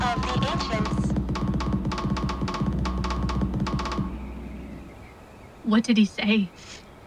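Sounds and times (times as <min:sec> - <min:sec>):
quick rhythmic drumming as communication: 0:00.0 - 0:05.0
low hum: 0:00.0 - 0:06.2
speech: 0:05.7 - 0:06.7.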